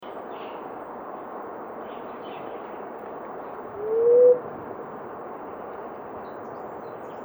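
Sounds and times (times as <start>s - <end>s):
Blue-headed quail-dove giving a low breathy hoot: 3.8s - 4.5s.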